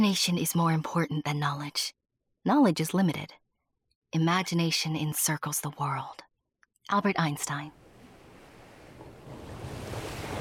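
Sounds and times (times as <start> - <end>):
speech: 0.0 - 3.4, 4.1 - 6.3, 6.9 - 7.8
ocean waves crashing against a cliff: 7.8 - 10.3.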